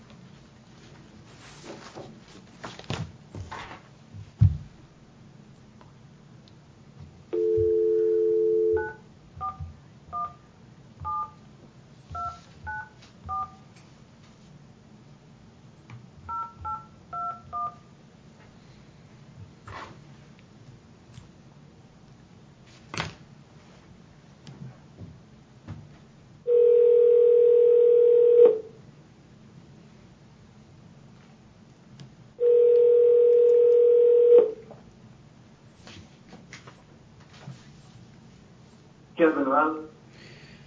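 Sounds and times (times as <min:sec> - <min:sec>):
telephone dial tone: 0:07.4 - 0:09.6, 0:26.5 - 0:28.7, 0:32.4 - 0:34.6
paired-tone telephone keypad beeps dialing a number: 0:07.4 - 0:10.4, 0:11.0 - 0:11.4, 0:12.2 - 0:13.6, 0:16.3 - 0:17.8.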